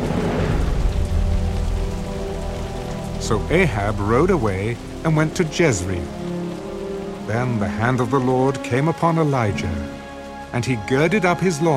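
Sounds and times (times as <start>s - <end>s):
deep rumble of thunder: 0.0s - 6.3s
heavy rain: 0.0s - 11.7s
speech: 3.2s - 6.2s, 7.3s - 11.7s.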